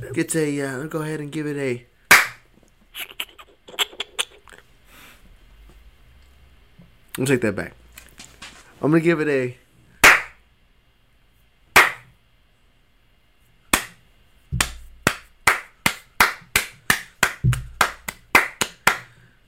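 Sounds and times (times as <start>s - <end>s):
speech: 0.1s - 1.9s, 7.2s - 7.8s, 8.8s - 9.6s
sharp hand claps: 2.1s - 2.4s, 10.0s - 10.4s, 11.8s - 12.1s, 13.7s - 14.0s, 14.6s - 19.2s
quick steady run of crisp slaps: 10.0s - 10.4s, 11.8s - 12.1s, 13.7s - 14.0s, 14.6s - 19.1s.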